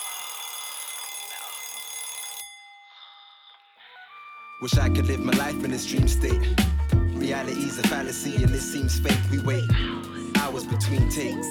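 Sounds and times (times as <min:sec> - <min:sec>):
alarm clock bell ringing: 0:00.0 - 0:03.8
speech: 0:04.6 - 0:11.5.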